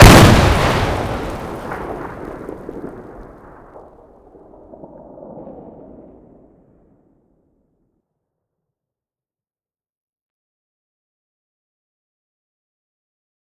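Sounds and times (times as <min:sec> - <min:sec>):
grenade explosion: 0:00.0 - 0:04.5.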